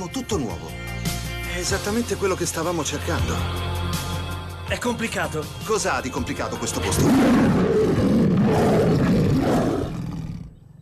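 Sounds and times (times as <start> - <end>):
speech: 0.0 - 0.8, 1.5 - 4.1, 4.7 - 7.7
deep loud animal roar at a zoo: 6.8 - 10.8
rough animal growl at a zoo: 6.8 - 10.8.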